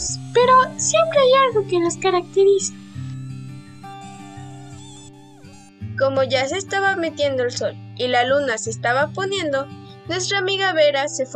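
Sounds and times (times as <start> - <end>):
bouncy musical backing: 0.0 - 5.7
mosquitoes buzzing: 0.0 - 5.8
speech: 0.1 - 2.8, 6.0 - 11.3.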